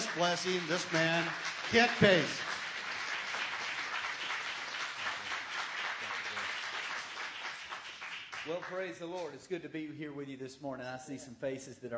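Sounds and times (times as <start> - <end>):
audience applauding: 0.0 - 9.3
speech: 0.2 - 2.5, 8.5 - 11.9.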